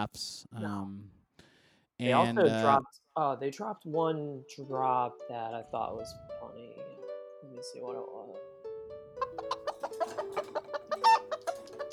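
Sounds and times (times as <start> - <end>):
speech: 0.0 - 1.2, 2.0 - 8.5
chicken clucking sound drop: 9.2 - 11.9.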